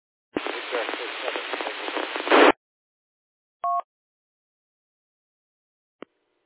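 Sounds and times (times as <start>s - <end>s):
band-limited radio static on an amateur radio net: 0.4s - 2.6s
two-tone beep: 3.6s - 3.8s.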